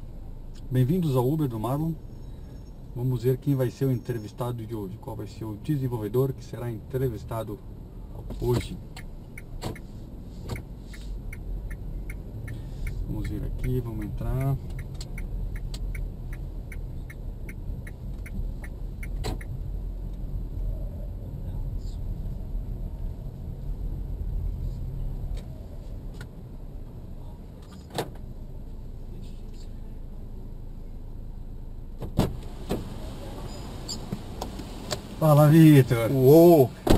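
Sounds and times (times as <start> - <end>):
steady low car interior rumble: 0.0 - 36.9
speech: 0.7 - 2.1, 3.0 - 9.0, 13.2 - 14.7, 35.5 - 36.8
faint rapid ticking: 10.6 - 19.6
old car door slammed shut: 32.0 - 33.0, 36.8 - 36.9.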